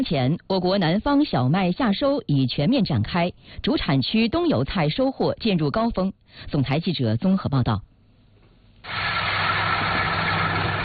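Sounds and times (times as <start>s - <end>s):
speech: 0.0s - 7.9s, 8.8s - 9.3s
large combine harvester engine roaring at full power in a rapeseed field in She County, Anhui: 8.9s - 10.8s.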